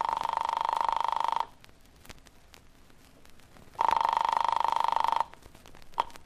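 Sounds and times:
rotary telephone bell ringing: 0.0 - 1.5, 3.8 - 5.3.

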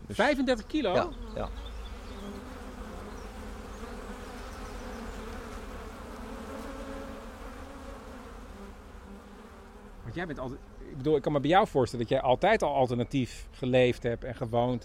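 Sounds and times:
honeybees buzzing inside a hive of some 50,000 to 60,000 bees: 0.0 - 11.7
speech: 0.1 - 1.7, 10.1 - 14.8.

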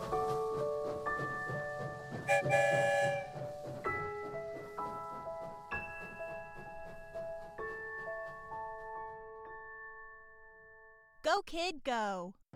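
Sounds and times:
steady low train rumble: 0.0 - 9.1
train sound effect whistle-like tones: 2.2 - 3.4
speech: 11.5 - 12.4.

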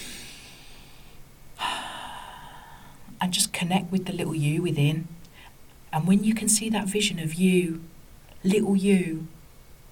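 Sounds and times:
deep breath during a guided relaxation: 0.0 - 3.1
speech: 3.2 - 5.2, 5.9 - 9.4.

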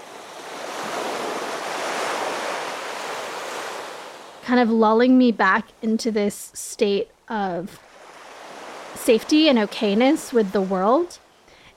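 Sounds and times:
ocean waves washing onto a beach: 0.0 - 4.7, 7.7 - 11.2
speech: 4.5 - 7.9, 9.0 - 11.2.

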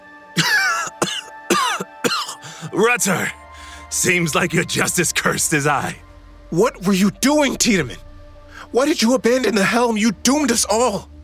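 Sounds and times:
man coughing up blood: 0.4 - 2.8
man gasping: 2.4 - 2.8, 3.5 - 3.9
speech: 2.8 - 8.1, 8.7 - 11.1.

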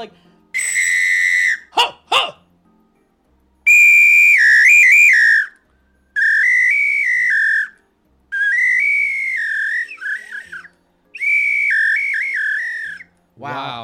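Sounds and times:
speech: 0.0 - 0.6, 13.4 - 13.8
samba whistle blasts with warbling trilled pitch: 0.6 - 2.3, 3.7 - 5.6, 6.2 - 13.1.

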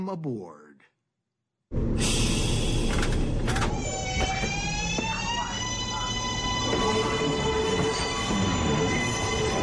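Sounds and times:
speech: 0.0 - 0.6
New York City subway train rumbling along the tracks: 1.8 - 9.6
high sustained metallic whining and screeching of a subway train: 3.8 - 9.6.

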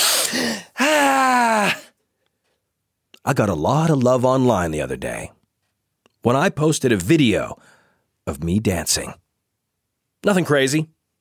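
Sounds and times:
deep breath in: 0.0 - 0.9, 7.6 - 8.1
long loud voiced sighing tone: 0.0 - 2.0
speech: 3.2 - 5.4, 6.2 - 7.7, 8.3 - 9.2, 10.2 - 11.0.

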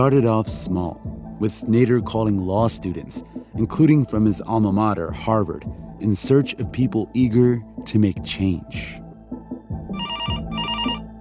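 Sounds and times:
speech: 0.0 - 9.0
telephone bell ringing: 9.9 - 11.1.

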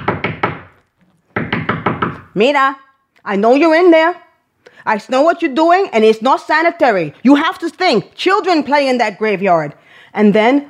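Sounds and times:
firm knocking on a door: 0.0 - 0.7, 1.4 - 2.2
speech: 2.4 - 4.2, 4.8 - 10.6.

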